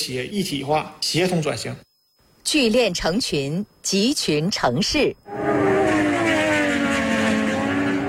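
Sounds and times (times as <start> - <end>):
speech: 0.0 - 5.5
racing motorcycle engine revving at high revs: 5.3 - 8.0.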